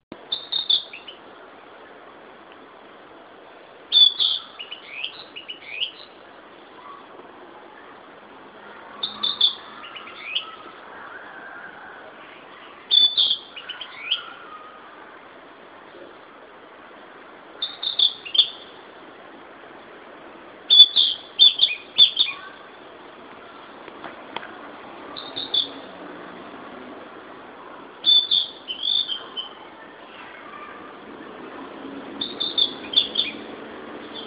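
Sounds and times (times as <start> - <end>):
Ficedula narcissina singing: 0.2 - 1.2, 3.9 - 6.2, 9.0 - 10.7, 12.7 - 14.7, 17.6 - 18.8, 20.7 - 22.7, 25.1 - 25.9, 28.0 - 30.0, 32.2 - 34.2.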